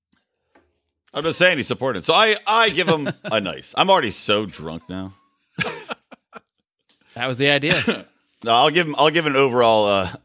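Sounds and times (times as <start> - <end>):
speech: 1.1 - 5.2, 7.2 - 10.2
laughter: 2.5 - 6.5, 7.6 - 8.1
person with rough hacking cough: 7.6 - 8.1.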